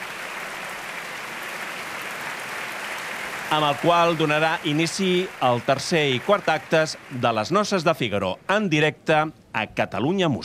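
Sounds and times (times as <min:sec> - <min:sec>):
audience applause for the conductor and orchestra in an opera house: 0:00.0 - 0:08.0
speech: 0:03.5 - 0:10.4.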